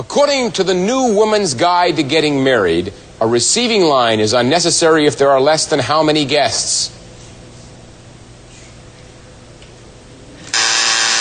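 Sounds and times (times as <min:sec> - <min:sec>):
speech: 0:00.0 - 0:07.0
game show time-up buzzer: 0:10.5 - 0:11.2.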